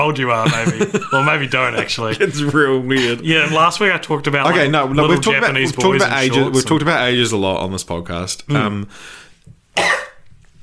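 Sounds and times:
speech: 0:00.0 - 0:09.2
laughter: 0:00.4 - 0:07.0
sharp cough: 0:09.8 - 0:10.2.

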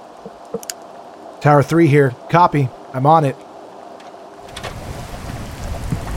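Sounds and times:
rain from a storm at a beach: 0:00.0 - 0:06.1
speech: 0:00.2 - 0:00.7, 0:01.4 - 0:03.4
deep rolling low rumble of a storm with lightning: 0:04.4 - 0:06.1.

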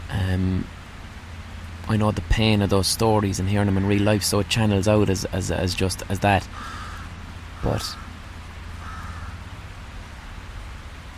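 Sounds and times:
speech: 0:00.1 - 0:00.8, 0:01.9 - 0:06.8, 0:07.6 - 0:08.0
crow cawing outdoors: 0:06.5 - 0:08.2, 0:08.8 - 0:09.5.

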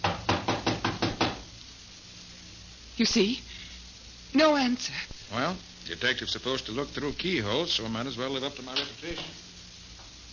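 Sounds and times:
firm knocking on a locked wooden door: 0:00.0 - 0:01.5
speech: 0:03.0 - 0:03.5, 0:04.3 - 0:09.5.

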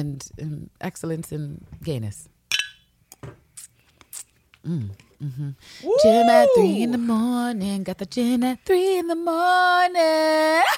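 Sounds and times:
speech: 0:00.0 - 0:02.4, 0:04.6 - 0:10.7
glasses clinking in a toast: 0:02.5 - 0:02.9.

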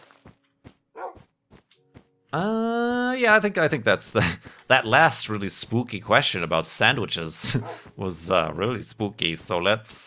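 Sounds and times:
dog on snow barking gruffly: 0:01.0 - 0:01.2
speech: 0:02.3 - 0:10.0.

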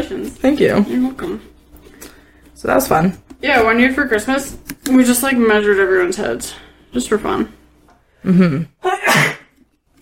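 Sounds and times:
speech: 0:00.0 - 0:01.5, 0:02.6 - 0:07.6, 0:08.2 - 0:09.4
person sneezing: 0:08.8 - 0:09.6.

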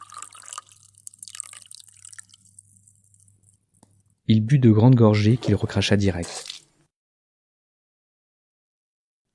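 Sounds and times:
tap water pouring into a glass toothbrush jar: 0:00.0 - 0:04.2
speech: 0:04.3 - 0:06.5.

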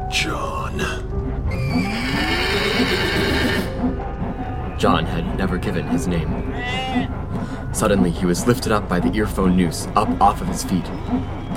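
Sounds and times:
horses stamping and pounding hooves: 0:00.8 - 0:11.5
horse whinnying: 0:01.5 - 0:03.8, 0:06.2 - 0:07.2
speech: 0:04.8 - 0:11.5.

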